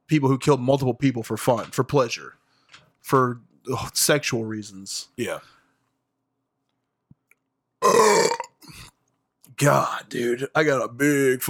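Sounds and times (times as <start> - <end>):
speech: 0.1 - 2.4, 3.0 - 5.6, 9.6 - 11.4
loud burp: 7.8 - 8.9.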